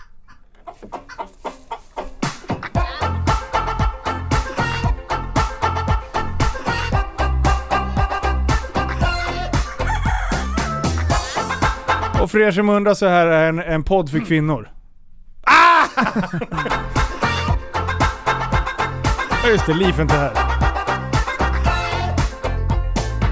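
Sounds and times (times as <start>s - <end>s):
speech: 0.8s - 1.4s, 12.4s - 14.8s, 16.2s - 17.0s, 19.5s - 20.5s
steady driving rhythmic beat: 0.9s - 12.4s, 16.5s - 23.3s
rooster crowing loudly: 9.6s - 11.2s
laughter: 15.5s - 17.6s.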